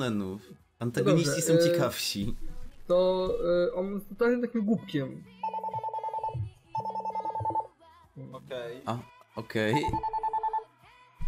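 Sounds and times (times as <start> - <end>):
speech: 0.0 - 5.4, 8.2 - 10.2
telephone ringing: 5.4 - 7.7, 9.8 - 10.7.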